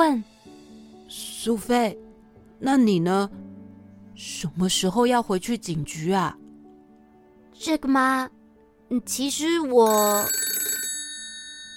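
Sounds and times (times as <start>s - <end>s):
speech: 0.0s - 0.3s, 1.1s - 2.0s, 2.6s - 3.4s, 4.2s - 6.4s, 7.6s - 10.5s
telephone ringing in a detective agency office: 9.8s - 11.7s.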